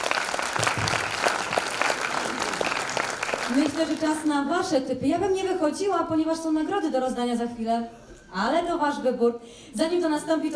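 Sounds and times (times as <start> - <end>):
room full of people clapping: 0.0 - 4.4
speech: 3.5 - 10.5.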